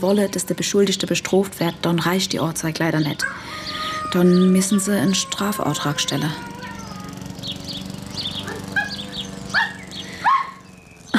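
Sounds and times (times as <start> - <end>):
speech: 0.0 - 6.5
low hum: 0.0 - 11.1
dog barking in sharp yaps: 8.4 - 10.6.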